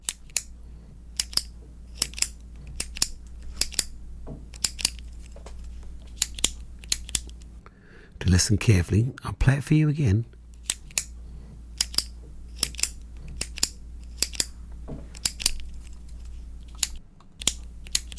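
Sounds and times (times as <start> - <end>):
retractable pen clicking: 0.0 - 0.5, 1.1 - 3.9, 4.5 - 7.5, 10.5 - 11.1, 11.8 - 14.5, 15.1 - 18.1
speech: 8.3 - 10.4.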